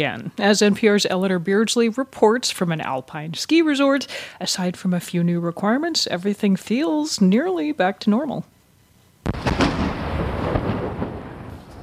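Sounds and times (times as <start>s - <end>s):
speech: 0.0s - 8.5s
avalanche cannons firing at an alpine ski resort in the French Alps: 9.2s - 11.8s
rumbling blasts reverberating across the mountains: 9.3s - 11.8s.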